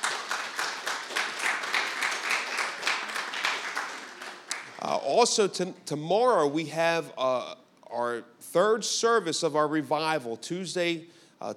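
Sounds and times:
audience at a revival service applauding: 0.0 - 4.9
speech: 4.8 - 11.5.

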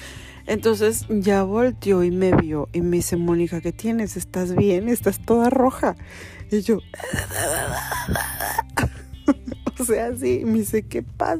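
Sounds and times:
speech: 0.5 - 11.3
person acting out choking with a strained wavering moan: 7.0 - 8.8
person coughing and gasping, imitating choking on pills: 7.1 - 9.8.

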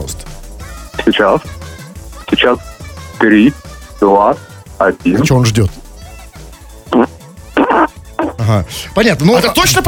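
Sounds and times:
speech: 1.1 - 1.6, 2.4 - 5.8, 8.5 - 9.8
buzzy fart noises blown with the mouth: 6.9 - 8.4.

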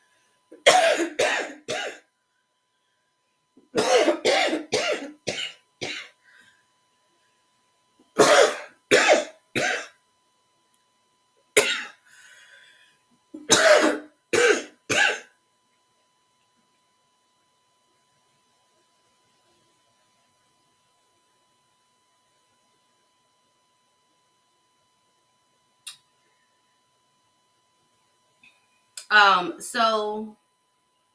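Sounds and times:
harsh coughing from a sick person: 0.6 - 2.0, 3.8 - 6.2, 8.2 - 10.0, 11.6 - 12.0, 13.4 - 15.3
speech: 29.1 - 30.4.

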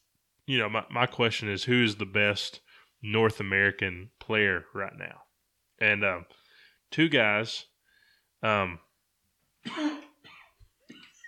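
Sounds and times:
speech: 0.5 - 5.2, 5.8 - 7.7, 8.4 - 8.8, 9.6 - 10.0
loud abrupt cough into a microphone: 9.6 - 11.1.

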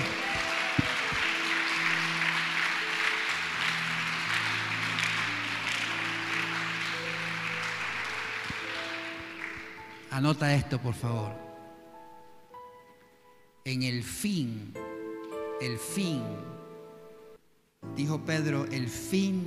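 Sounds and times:
audience applause: 0.0 - 10.1
speech: 10.2 - 11.5, 13.7 - 14.8, 15.6 - 16.6, 17.8 - 19.4.

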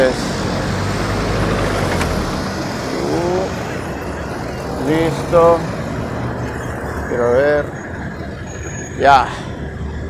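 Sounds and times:
road traffic with passing cars in a busy city plaza: 0.0 - 10.0
faint tonal whine: 0.6 - 4.5
speech: 5.3 - 5.7, 9.0 - 9.4.

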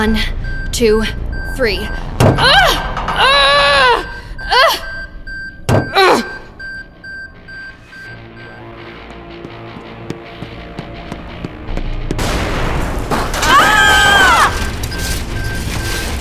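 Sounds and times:
speech: 0.0 - 4.8
explosion: 12.2 - 16.1.

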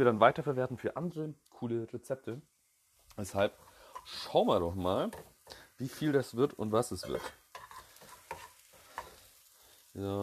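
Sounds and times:
speech: 0.0 - 2.5, 3.2 - 7.4, 10.0 - 10.2
onions frying in a pan: 0.0 - 10.2
stirring scrapes in a pan: 3.5 - 4.4, 6.9 - 9.3.

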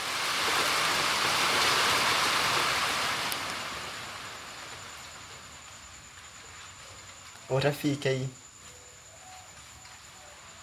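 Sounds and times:
heavy rain pouring down: 0.0 - 8.3
speech: 7.5 - 8.4.

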